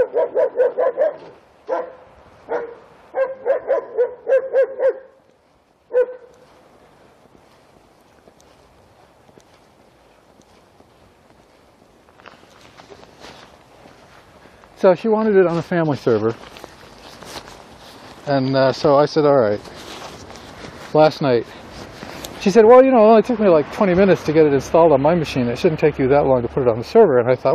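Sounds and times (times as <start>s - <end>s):
dog barking: 0.0s - 5.2s, 5.9s - 6.4s
faint footsteps and shuffling: 0.0s - 24.4s
scuffling noise: 5.3s - 22.6s
speech: 14.8s - 16.6s, 18.3s - 19.7s, 20.9s - 21.6s, 22.4s - 27.5s.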